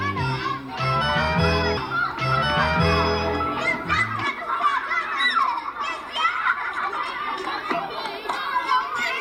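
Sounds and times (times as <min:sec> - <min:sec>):
steady musical tone: 0:00.0 - 0:04.4
children playing and chattering in a lively group: 0:00.0 - 0:09.2.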